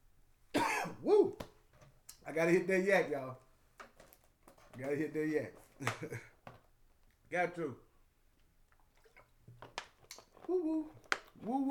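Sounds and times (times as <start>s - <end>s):
speech: 2.3s - 3.5s, 4.8s - 6.3s, 7.3s - 7.8s, 10.5s - 11.7s
person drinking water with crackling liquid bursts: 8.7s - 11.5s.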